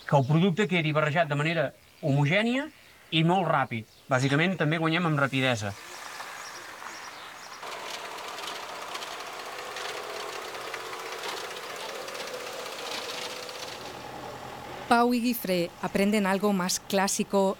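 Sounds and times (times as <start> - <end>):
speech: 0.1 - 5.9, 14.9 - 17.5
sprayer machinery distributing crop protection products: 5.2 - 17.5
tractor engine running in a field: 5.8 - 17.5.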